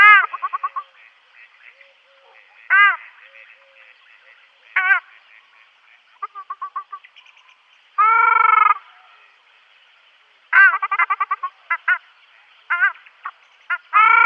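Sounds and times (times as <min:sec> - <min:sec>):
ruddy shelduck nasal calls and harsh honk: 0:00.0 - 0:05.4, 0:06.2 - 0:07.0, 0:08.0 - 0:08.9, 0:10.5 - 0:12.0, 0:13.7 - 0:14.2.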